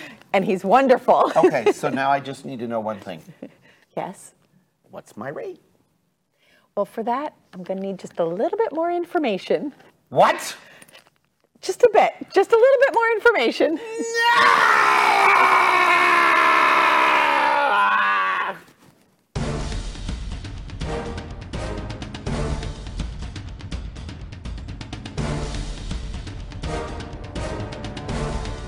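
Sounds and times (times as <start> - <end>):
speech: 0.4 - 5.7, 6.8 - 10.7, 11.6 - 15.6
person screaming: 13.8 - 18.7
busy steady music: 19.4 - 28.6.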